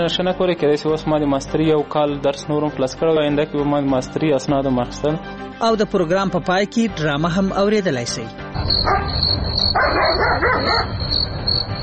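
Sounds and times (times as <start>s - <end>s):
speech: 0.0s - 11.8s
dog barking at night: 8.8s - 11.0s.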